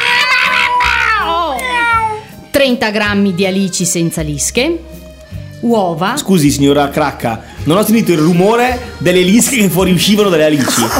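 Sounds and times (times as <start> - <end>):
cat meowing: 0.0 - 2.3
speech: 2.6 - 10.9.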